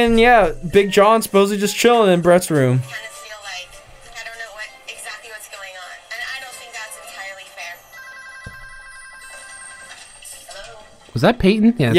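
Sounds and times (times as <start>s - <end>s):
speech: 0.0s - 3.1s, 11.2s - 11.9s
telephone ringing with a bright electronic tone: 6.2s - 11.0s.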